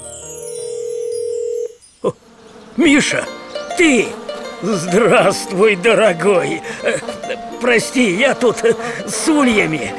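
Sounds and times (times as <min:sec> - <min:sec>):
smartphone placing a video call: 0:00.6 - 0:01.8
speech: 0:02.0 - 0:02.2, 0:02.8 - 0:09.9.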